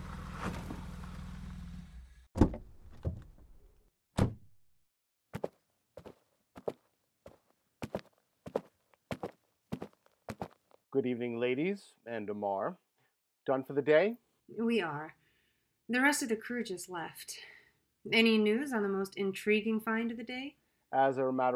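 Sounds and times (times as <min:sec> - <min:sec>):
car engine rumbling to a stop: 0:00.0 - 0:02.3
heavy car door thunks: 0:02.4 - 0:03.4
footsteps walking on a hard surface: 0:05.3 - 0:10.8
speech: 0:11.0 - 0:12.8, 0:13.5 - 0:15.2, 0:15.9 - 0:21.5.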